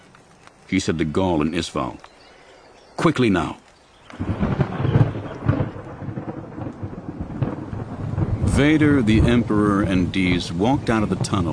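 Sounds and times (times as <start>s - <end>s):
heavy rain pouring on forest leaves: 0.0s - 11.5s
speech: 0.7s - 2.1s, 3.0s - 4.6s, 8.6s - 11.5s
deep rolling thunder: 4.1s - 11.5s.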